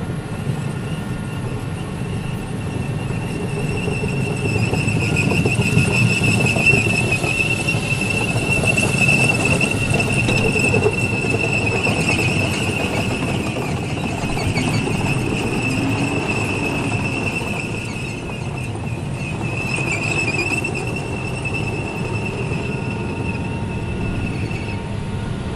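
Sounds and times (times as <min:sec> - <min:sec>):
tank passing by: 0:00.2 - 0:25.4.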